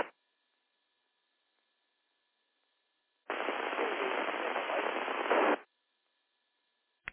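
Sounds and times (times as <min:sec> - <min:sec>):
harsh radio static: 0:03.3 - 0:05.7.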